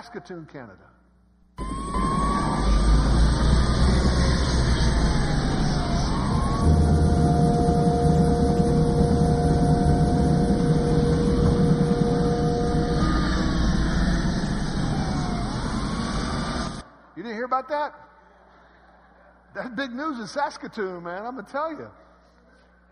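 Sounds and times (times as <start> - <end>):
speech: 0.0 - 1.0, 17.5 - 18.0, 19.6 - 22.0
police sirens wailing in a police car chase: 1.6 - 16.8
sustained tones: 1.6 - 16.8.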